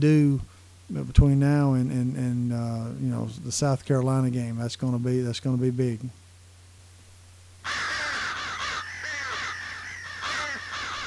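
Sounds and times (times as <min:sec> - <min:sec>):
speech: 0:00.0 - 0:06.2
faint low hum: 0:00.0 - 0:11.0
several crows cawing: 0:07.6 - 0:11.0.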